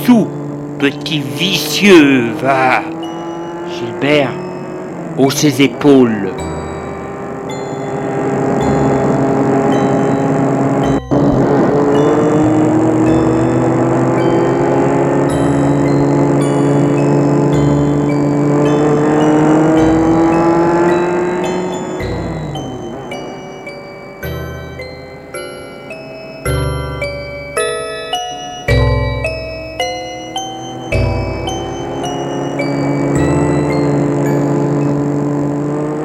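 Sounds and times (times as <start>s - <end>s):
car engine droning while speeding along a highway in the dark: 0.0s - 36.0s
speech: 0.1s - 3.0s, 3.7s - 4.4s, 5.2s - 6.5s.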